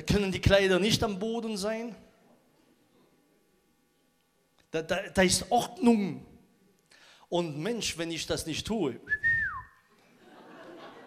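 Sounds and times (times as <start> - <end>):
speech: 0.0 - 2.1, 4.7 - 6.3, 7.3 - 9.3
faint hiss: 0.0 - 11.0
short clear whistle sliding downward: 9.0 - 9.9
laughter: 10.0 - 11.0.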